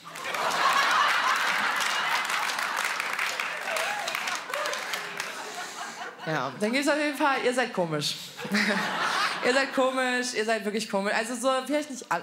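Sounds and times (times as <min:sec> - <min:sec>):
audience of people aged 60 and over applauding: 0:00.0 - 0:06.1
people chuckling: 0:00.0 - 0:06.6, 0:08.4 - 0:09.5
speech: 0:06.3 - 0:12.2.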